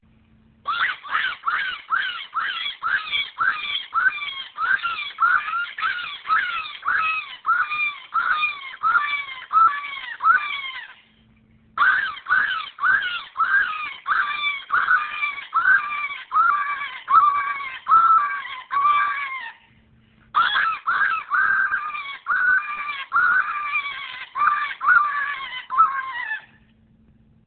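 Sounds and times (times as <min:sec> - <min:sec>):
high-pitched cottontail sound: 0:00.6 - 0:11.2, 0:11.8 - 0:26.7.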